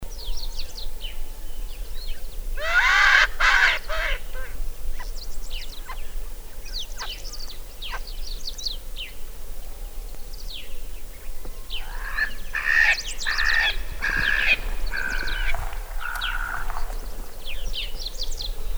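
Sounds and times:
Erckel's spurfowl calling: 2.6s - 4.6s, 11.4s - 18.7s.

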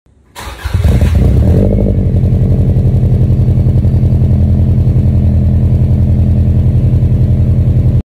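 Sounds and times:
Subaru car: 0.1s - 8.0s.

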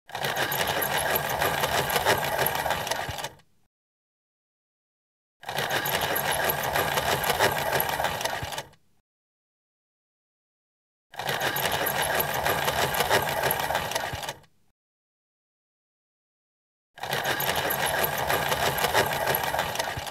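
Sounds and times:
desktop pencil sharpener: 0.1s - 3.4s, 5.4s - 8.8s, 11.1s - 14.5s, 17.0s - 20.0s.

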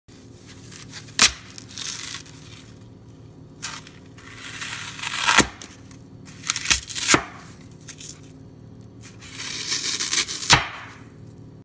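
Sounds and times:
flower sponge being cut: 0.4s - 2.8s, 3.6s - 8.2s, 9.0s - 10.9s.

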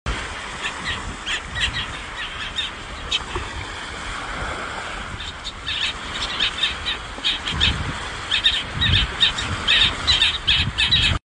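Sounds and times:
sea: 0.1s - 11.2s
bird: 0.6s - 3.3s, 5.1s - 11.2s.

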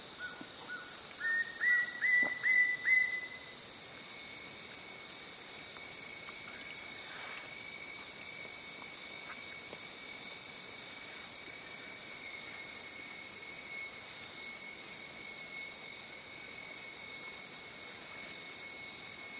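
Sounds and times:
ringed woodpecker: 0.2s - 3.3s.

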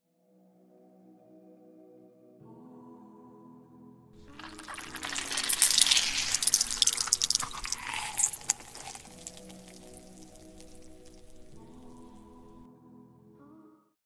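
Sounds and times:
lemon being squeezed: 4.2s - 12.6s.

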